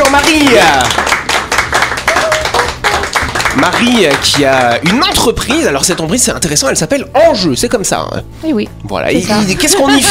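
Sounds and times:
hand clapping from a small group: 0.0s - 6.3s
speech: 3.6s - 10.1s.

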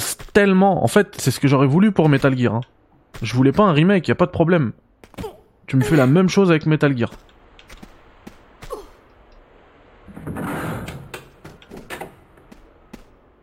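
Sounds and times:
speech: 0.4s - 7.3s
video game door sliding open with a mechanical whoosh: 10.0s - 12.2s.

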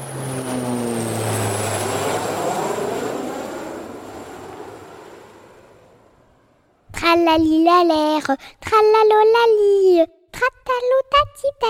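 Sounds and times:
propeller airplane engine droning past: 0.0s - 8.5s
speech: 7.1s - 11.6s.

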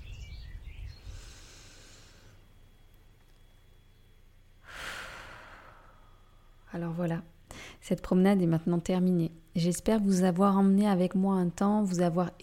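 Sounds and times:
deep breath in and out: 1.0s - 2.6s, 4.6s - 6.6s, 7.5s - 7.8s
speech: 6.8s - 12.4s.

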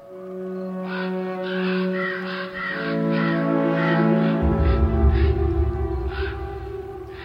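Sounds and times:
group of crows cawing: 0.7s - 7.2s
steady low rumble: 4.4s - 7.2s.

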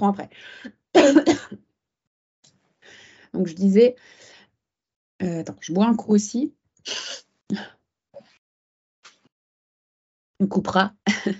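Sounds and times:
speech: 0.0s - 1.6s, 3.3s - 4.3s, 5.2s - 7.8s, 10.4s - 11.3s
person coughing: 1.0s - 1.6s.

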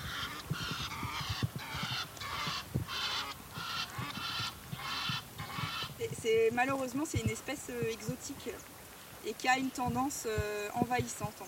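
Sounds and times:
Egyptian geese honking: 0.0s - 6.5s
speech: 6.2s - 11.4s.

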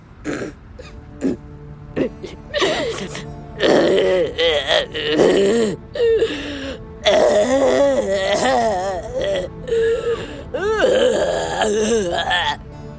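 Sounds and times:
dinosaur crying out in loud groaning wails: 2.0s - 12.6s.

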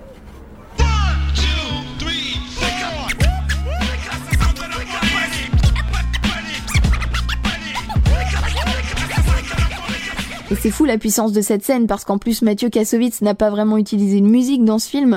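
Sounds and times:
loud punchy beat with heavy bass: 0.8s - 10.8s
records scratched on turntables: 2.3s - 10.9s
speech: 10.5s - 15.1s.

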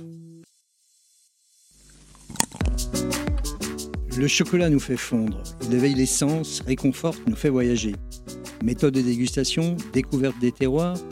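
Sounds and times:
blade cutting open a cacao pod: 2.2s - 2.8s
speech: 4.2s - 11.0s.

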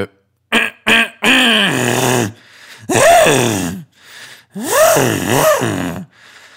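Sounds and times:
voice imitating an engine revving: 0.6s - 3.9s, 4.6s - 6.1s.

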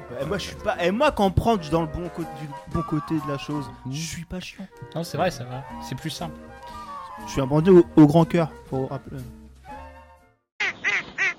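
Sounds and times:
speech: 0.1s - 9.4s
duck quacking: 10.6s - 11.3s.

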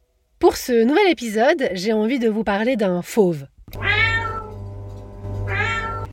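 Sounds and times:
speech: 0.4s - 3.8s
steady low hum: 3.7s - 5.8s
cat meowing: 3.8s - 4.6s, 5.4s - 6.1s.

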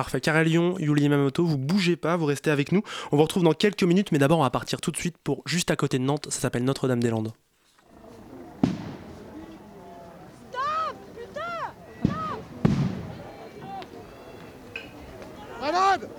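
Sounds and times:
speech: 0.0s - 7.5s
outdoor crowd people shouting and yelling: 8.2s - 14.6s, 15.2s - 16.1s
dispersal grenade explosive bangs: 8.6s - 9.6s, 12.0s - 13.4s.

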